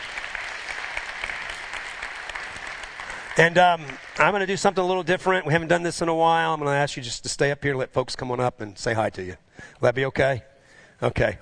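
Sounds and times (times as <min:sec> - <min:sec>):
audience applauding: 0:00.0 - 0:05.1
speech: 0:03.4 - 0:11.3.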